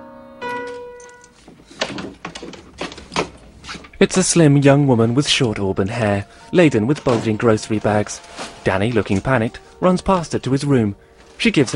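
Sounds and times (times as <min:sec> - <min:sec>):
sustained piano notes: 0:00.0 - 0:11.7
door opening: 0:00.4 - 0:10.6, 0:11.2 - 0:11.7
thuds and rattling knocks: 0:01.4 - 0:04.0
speech: 0:04.0 - 0:11.7.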